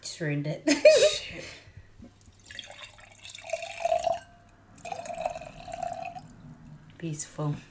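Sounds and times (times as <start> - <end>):
speech: 0.2 - 1.6, 7.0 - 7.7
wine pouring into a glass: 2.2 - 7.0.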